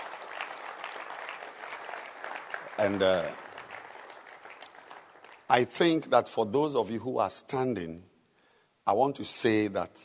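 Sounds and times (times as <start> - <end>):
audience clapping hands: 0.0 - 6.0
speech: 2.8 - 3.4, 5.5 - 8.1, 8.8 - 10.0.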